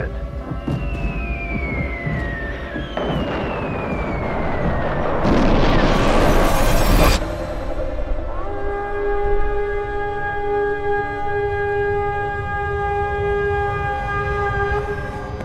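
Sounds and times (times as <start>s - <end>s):
deep continuous rumble: 0.0s - 15.4s
descending whistle: 0.4s - 15.4s
huge explosion blast: 0.6s - 8.3s.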